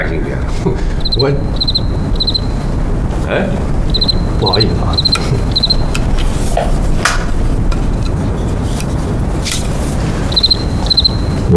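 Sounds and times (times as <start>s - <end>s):
speech: 0.0s - 1.8s, 3.3s - 5.4s, 6.6s - 7.0s
steady low rumble: 0.0s - 11.5s
cricket chirping: 0.9s - 3.0s, 3.7s - 6.2s, 10.2s - 11.5s.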